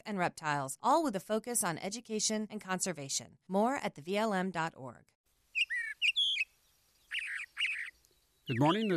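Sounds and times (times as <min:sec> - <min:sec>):
speech: 0:00.0 - 0:05.7, 0:08.5 - 0:08.9
teal duck calling: 0:05.6 - 0:06.5, 0:08.5 - 0:08.9.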